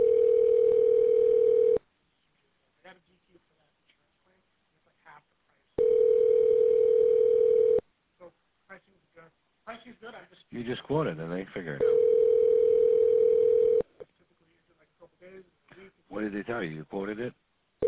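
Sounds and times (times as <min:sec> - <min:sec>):
telephone ringback tone on the line: 0:00.0 - 0:01.8, 0:05.8 - 0:07.8, 0:11.8 - 0:13.9
speech: 0:10.6 - 0:12.2, 0:16.2 - 0:17.4.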